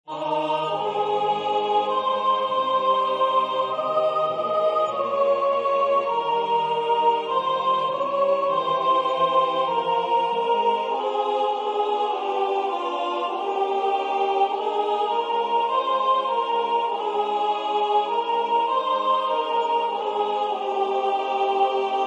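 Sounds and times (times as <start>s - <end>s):
soprano singing a hymn: 0.1s - 22.0s.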